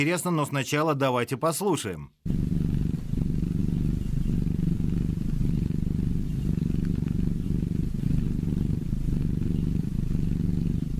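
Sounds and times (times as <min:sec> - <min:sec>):
speech: 0:00.0 - 0:02.4
cat purring: 0:02.2 - 0:10.9.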